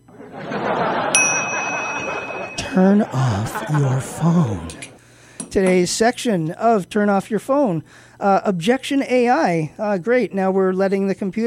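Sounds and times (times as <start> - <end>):
steady noise: 0.0 - 10.3
laughter: 0.1 - 5.0
bell ringing: 0.7 - 3.7
speech: 2.8 - 4.9, 5.5 - 11.4.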